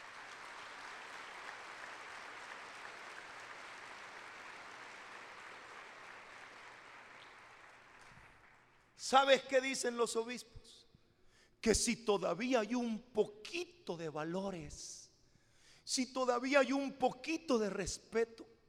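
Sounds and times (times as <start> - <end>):
crowd applauding: 0.0 - 8.8
speech: 9.0 - 10.8, 11.6 - 15.0, 15.9 - 18.5.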